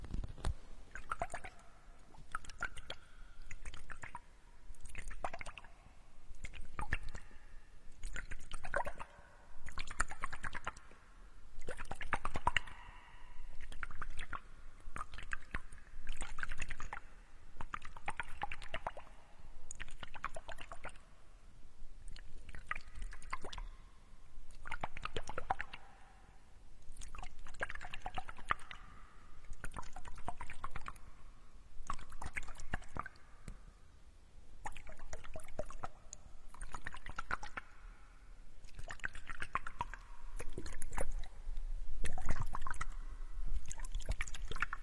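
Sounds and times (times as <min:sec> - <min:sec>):
water gurgling and squishing in an ear spa: 0:00.0 - 0:04.2, 0:04.8 - 0:05.7, 0:08.0 - 0:10.8, 0:11.6 - 0:17.0, 0:17.6 - 0:19.1, 0:19.8 - 0:21.0, 0:22.1 - 0:23.7, 0:24.5 - 0:25.9, 0:26.9 - 0:31.1, 0:31.8 - 0:33.2, 0:34.6 - 0:37.8, 0:38.6 - 0:41.4, 0:42.0 - 0:44.8
sharp little clicks and drips: 0:00.0 - 0:07.4, 0:08.0 - 0:21.0, 0:22.0 - 0:23.8, 0:24.5 - 0:26.0, 0:26.8 - 0:28.9, 0:29.5 - 0:31.1, 0:31.8 - 0:33.6, 0:34.6 - 0:37.8, 0:38.6 - 0:44.8.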